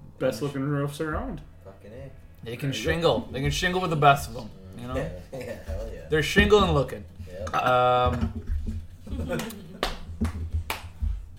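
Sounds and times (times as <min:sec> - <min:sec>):
speech: 0:00.2 - 0:08.5, 0:09.2 - 0:09.6
laughter: 0:05.0 - 0:06.1, 0:09.0 - 0:10.2
hand slapping a knee: 0:07.7 - 0:11.3.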